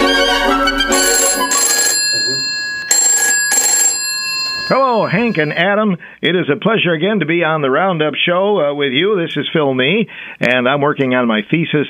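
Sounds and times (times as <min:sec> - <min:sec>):
telephone ringing: 0:00.8 - 0:05.8
speech: 0:04.7 - 0:11.8.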